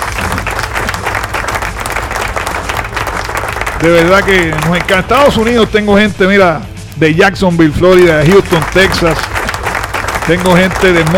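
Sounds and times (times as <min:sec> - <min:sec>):
crowd applauding: 0:00.0 - 0:05.7, 0:08.2 - 0:11.1
speech: 0:03.8 - 0:09.3, 0:10.3 - 0:11.1.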